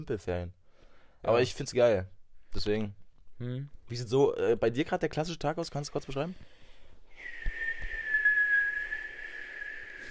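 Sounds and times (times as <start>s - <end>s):
speech: 0.0s - 0.6s, 1.2s - 6.5s
person attempting to whistle with breathy rushing air: 7.2s - 10.0s.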